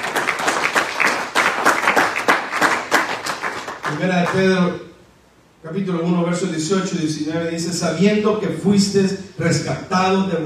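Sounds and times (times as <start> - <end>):
audience applauding: 0.0 - 4.4
speech: 3.9 - 4.9, 5.6 - 10.4.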